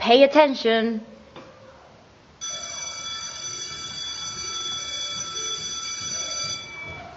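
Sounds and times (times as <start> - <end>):
speech: 0.0 - 1.1
electric school bell ringing: 2.4 - 7.1.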